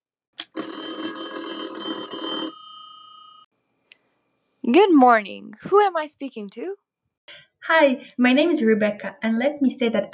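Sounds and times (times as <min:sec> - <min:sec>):
telephone bell ringing for an incoming listener call: 0:00.5 - 0:03.5
speech: 0:04.7 - 0:10.1.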